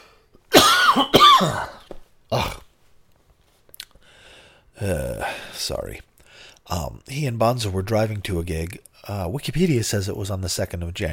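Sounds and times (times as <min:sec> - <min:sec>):
person coughing hard: 0:00.5 - 0:02.7
speech: 0:01.0 - 0:01.8, 0:04.8 - 0:11.1.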